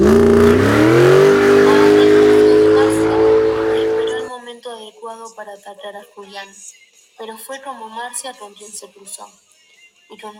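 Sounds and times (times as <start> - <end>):
car engine revving and accelerating: 0.0 - 4.3
speech: 7.2 - 10.3.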